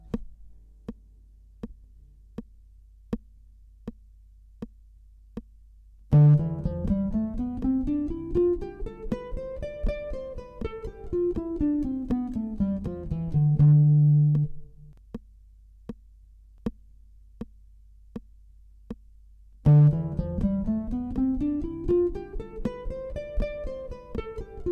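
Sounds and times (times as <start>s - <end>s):
guitar playing a Dorian scale in triplets: 6.1s - 15.0s, 19.6s - 24.6s.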